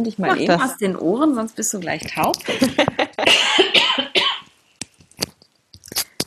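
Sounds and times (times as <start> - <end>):
speech: 0.0 - 3.3
laughter: 2.4 - 4.1
person coughing: 2.5 - 4.5.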